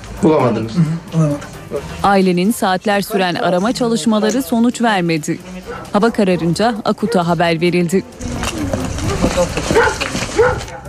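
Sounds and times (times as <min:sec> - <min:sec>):
speech: 0:00.2 - 0:08.3
trained search dog giving short yelping barks: 0:03.0 - 0:03.5, 0:05.6 - 0:07.4, 0:09.0 - 0:10.8.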